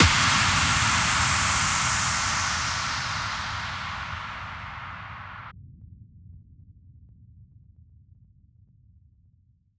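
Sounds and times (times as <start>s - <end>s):
impact hits: 0.0s - 5.5s.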